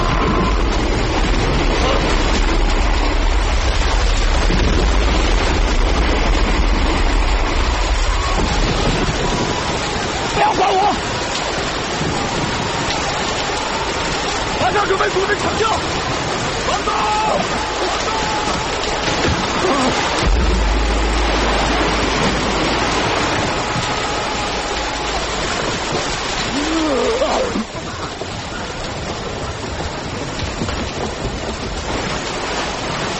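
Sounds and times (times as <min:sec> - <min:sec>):
storm-driven water roaring during a typhoon: 0:00.0 - 0:33.1
typhoon wind roaring: 0:00.0 - 0:33.1
faint voices: 0:12.2 - 0:30.2.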